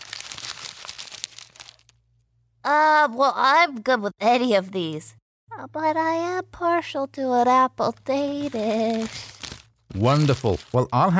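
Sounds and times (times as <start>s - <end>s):
paper muffin case peeled off a choc chip muffin: 0.0s - 2.0s, 8.2s - 11.1s
speech: 2.7s - 9.3s, 9.9s - 11.1s.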